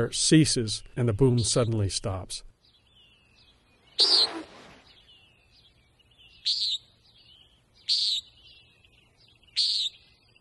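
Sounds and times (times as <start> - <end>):
speech: 0.0 - 2.5, 4.0 - 4.5
common nighthawk call: 3.1 - 8.9, 9.5 - 10.3.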